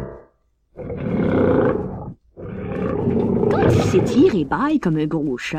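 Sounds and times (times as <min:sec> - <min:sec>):
lion roaring: 0:00.8 - 0:04.3
speech: 0:04.4 - 0:05.5.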